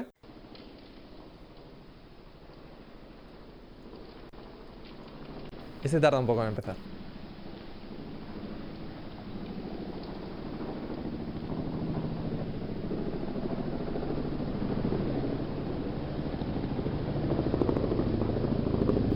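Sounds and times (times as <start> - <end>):
helicopter flying overhead with rotor thump and engine roar: 0.0 - 19.1
speech: 5.8 - 6.9.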